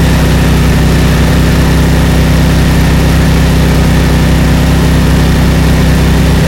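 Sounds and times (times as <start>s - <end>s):
Tiger tank diesel engine revving under load: 0.0s - 6.4s.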